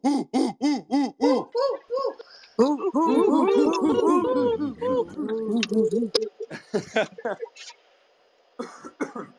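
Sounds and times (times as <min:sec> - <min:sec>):
voices in an online audio chat room imitating owls hooting: 0:00.0 - 0:07.7
laughter: 0:01.3 - 0:07.7
voices cheering in an online audio chat room: 0:02.6 - 0:05.9.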